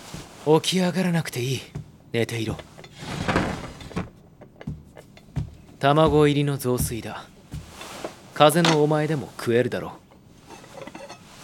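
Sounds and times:
speech: 0.4 - 2.7, 5.8 - 7.3, 8.4 - 10.0
soft knocks and taps of a sliding door settling: 1.6 - 8.8
sliding door opened to bring in a meal: 2.3 - 4.8.

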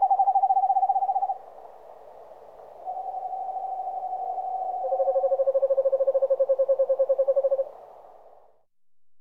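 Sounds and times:
Eastern screech owl whistled trill: 0.0 - 1.4, 2.9 - 7.6.

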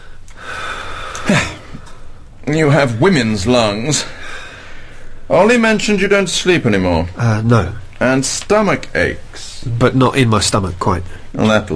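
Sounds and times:
gasping intake of breath during a doctor's chest examination: 0.0 - 2.3, 4.0 - 5.2
steady low hiss: 0.0 - 11.7
speech: 1.3 - 1.6, 2.5 - 4.2, 5.3 - 11.7.

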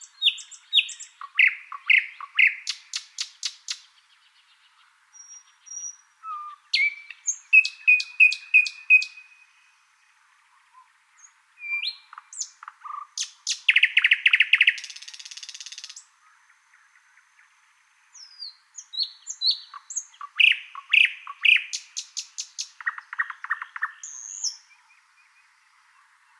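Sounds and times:
thrush nightingale Luscinia luscinia singing: 0.0 - 26.3.

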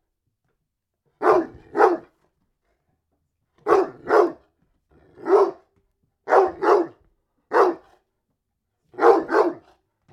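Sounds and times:
dog barking: 1.2 - 2.2, 3.6 - 4.5, 5.2 - 8.0, 9.0 - 9.8.

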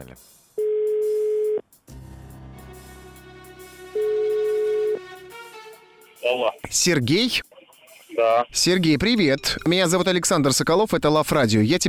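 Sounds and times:
speech: 0.0 - 0.4, 6.3 - 7.5, 8.2 - 11.8
phone ringback tone after a number is dialed: 0.6 - 1.6, 4.0 - 5.0.

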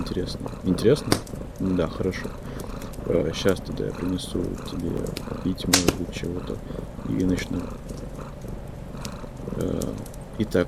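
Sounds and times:
domestic cat purring: 0.0 - 10.6
faint hiss: 0.0 - 10.6
speech: 0.1 - 8.1, 9.6 - 10.6.

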